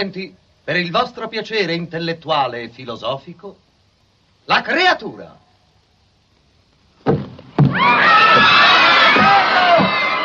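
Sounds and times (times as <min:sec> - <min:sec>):
speech: 0:00.0 - 0:03.6, 0:04.5 - 0:05.4
heavy thuds: 0:07.0 - 0:08.5
audience of scientists shouting and screaming in alarmed commotion: 0:07.6 - 0:10.2.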